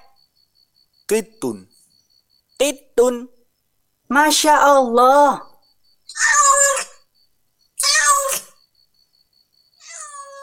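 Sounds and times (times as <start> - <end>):
speech: 1.1 - 1.7, 2.6 - 3.4, 4.1 - 5.5, 6.1 - 6.4
cat meowing: 6.1 - 7.0, 7.8 - 8.6, 9.8 - 10.4.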